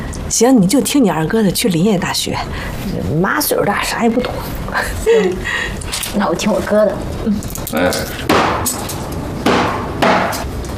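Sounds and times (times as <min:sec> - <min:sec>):
speech: 0:00.3 - 0:09.0
heavy chopping on a wooden cutting board: 0:08.3 - 0:08.7, 0:09.5 - 0:10.5.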